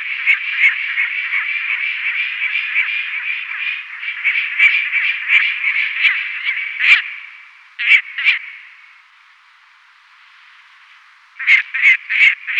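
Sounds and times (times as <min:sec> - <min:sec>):
lanner falcon calling: 0:00.0 - 0:08.9, 0:11.4 - 0:12.5.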